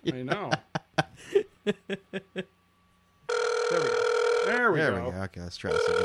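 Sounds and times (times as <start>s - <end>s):
speech: 0.0s - 0.7s, 5.5s - 6.0s
person chuckling: 0.0s - 2.5s
telephone ringback tone on an outgoing call: 3.3s - 6.0s.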